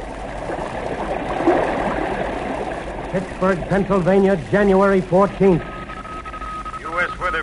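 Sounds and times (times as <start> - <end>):
floodwater of overflowing creeks and the rising Ohio River rushing: 0.0 - 5.7
churning gurgles of floodwater: 0.0 - 6.6
speech: 3.1 - 5.7.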